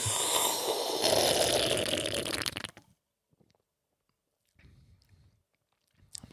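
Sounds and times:
person slurping green-coloured fizzy orange soda: 0.0s - 2.8s.

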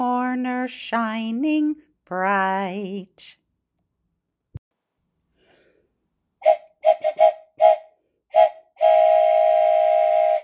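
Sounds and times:
speech: 0.5s - 3.4s
train whistle: 6.4s - 10.4s.

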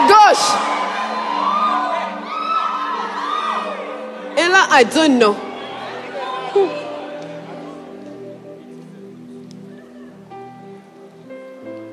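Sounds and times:
large crowd shouting, whooping and cheering: 0.0s - 8.4s
speech: 4.7s - 5.4s, 6.5s - 6.8s.

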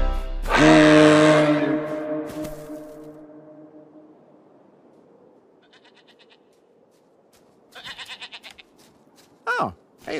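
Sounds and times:
deep rain horn blast recreating a reindeer mating call: 0.0s - 4.2s
goat bleating: 5.6s - 6.5s, 7.7s - 8.7s.

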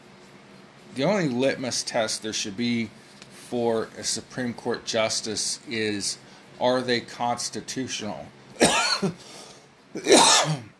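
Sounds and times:
speech: 1.0s - 9.4s, 10.0s - 10.7s
person coughing from smoke caught in the throat: 8.6s - 9.3s, 10.0s - 10.7s.

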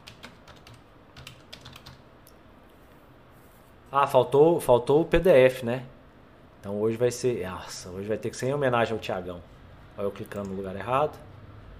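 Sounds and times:
typing on a computer keyboard: 0.0s - 2.0s
speech: 3.9s - 6.0s, 6.6s - 11.3s.

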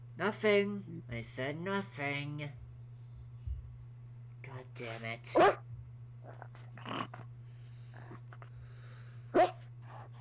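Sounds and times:
steady low electrical hum: 0.0s - 10.1s
speech: 0.2s - 2.6s, 4.5s - 7.4s
dog barking: 5.4s - 5.6s, 9.3s - 9.7s.

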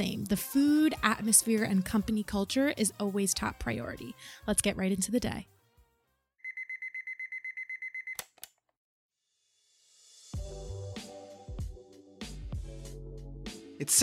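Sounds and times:
speech: 0.0s - 5.5s, 13.8s - 14.0s
music: 0.0s - 6.4s, 9.5s - 14.0s
electronic alarm clock beeping: 6.4s - 8.2s.

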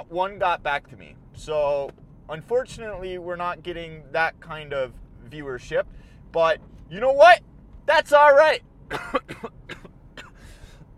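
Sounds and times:
speech: 0.0s - 9.9s
person coughing during a rainy spell: 8.9s - 10.5s.

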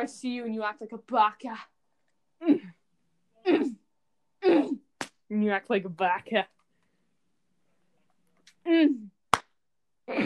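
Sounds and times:
speech: 0.0s - 1.7s, 2.4s - 2.8s, 3.4s - 3.8s, 4.5s - 6.6s, 8.7s - 9.1s
single sharp hand clap: 5.0s - 5.2s, 9.3s - 9.6s.

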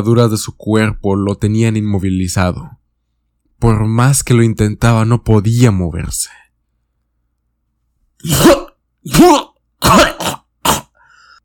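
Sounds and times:
speech: 0.0s - 2.8s, 3.6s - 6.4s, 8.2s - 10.1s
harsh raspy coughing: 8.2s - 11.2s.

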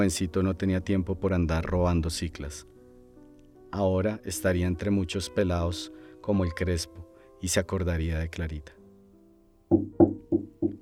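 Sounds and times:
speech: 0.0s - 2.7s, 3.7s - 8.8s, 9.7s - 10.0s
broom knocking on a door: 9.7s - 10.8s.

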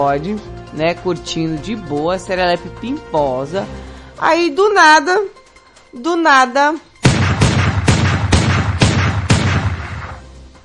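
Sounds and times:
speech: 0.0s - 6.9s
loud gunshots with booming echo: 7.0s - 10.5s.

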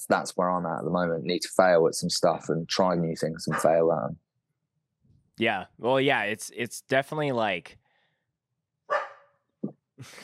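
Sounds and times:
speech: 0.0s - 4.2s, 5.4s - 7.8s, 10.0s - 10.2s
dog barking: 3.4s - 3.8s, 8.9s - 9.3s.

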